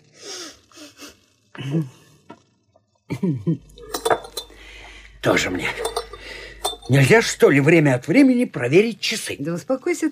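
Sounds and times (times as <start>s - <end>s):
speech: 1.6s - 2.0s, 3.2s - 3.7s, 5.2s - 6.0s, 6.9s - 10.0s
drinking glasses clinking during a toast over whiskey: 3.8s - 4.7s, 5.5s - 7.1s.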